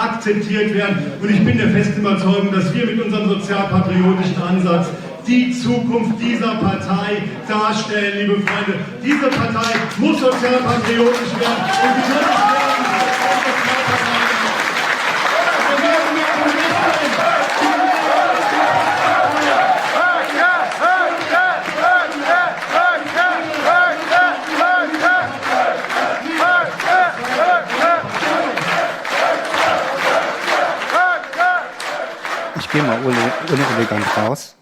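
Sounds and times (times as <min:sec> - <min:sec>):
speech: 0:00.2 - 0:14.3, 0:32.8 - 0:34.6
rhythmic pulsing clapping of a crowd: 0:08.4 - 0:34.4
crowd at a political party conference applauding and cheering: 0:09.6 - 0:34.4.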